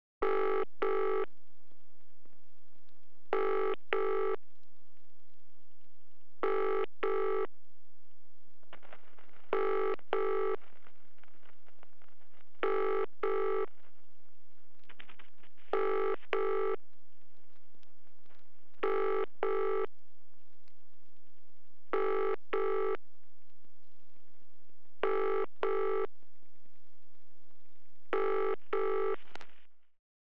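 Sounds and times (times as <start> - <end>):
BT telephone line tones: 0.2 - 1.3, 3.4 - 4.4, 6.4 - 7.5, 9.6 - 10.6, 12.6 - 13.7, 15.7 - 16.8, 18.8 - 19.9, 22.0 - 23.0, 25.0 - 26.1, 28.2 - 29.2.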